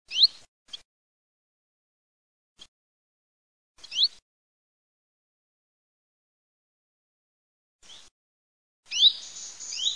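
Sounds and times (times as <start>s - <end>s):
bird singing: 8.9s - 9.9s.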